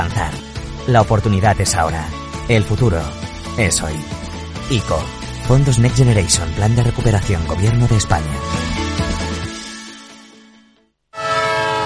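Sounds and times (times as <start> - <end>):
speech: 0.0 - 8.8
horn of a departing train: 11.1 - 11.8.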